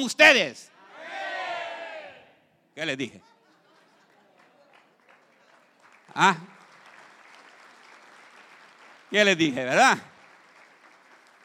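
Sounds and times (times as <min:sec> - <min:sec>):
speech: 0:00.0 - 0:00.7, 0:02.8 - 0:03.3, 0:06.2 - 0:06.6, 0:09.1 - 0:10.1
small group in a church audience shouting together: 0:00.8 - 0:02.3
laughter: 0:03.2 - 0:04.6.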